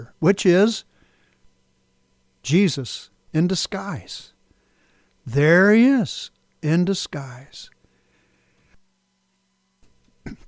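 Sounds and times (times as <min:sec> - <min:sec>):
speech: 0:00.0 - 0:00.9, 0:02.4 - 0:04.3, 0:05.3 - 0:07.7
faint low hum: 0:00.0 - 0:10.4
person sneezing: 0:10.3 - 0:10.4.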